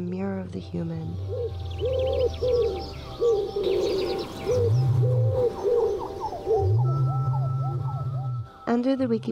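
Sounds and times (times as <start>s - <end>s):
smaller birds chirping and twittering: 0.1s - 9.3s
speech: 0.4s - 5.2s, 8.7s - 9.3s
pigeons cooing: 1.2s - 8.6s.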